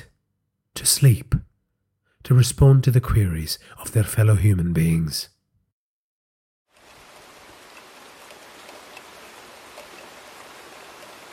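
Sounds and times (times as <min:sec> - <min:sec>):
speech: 0:00.8 - 0:01.4, 0:02.2 - 0:05.4
steady rain: 0:06.7 - 0:11.3.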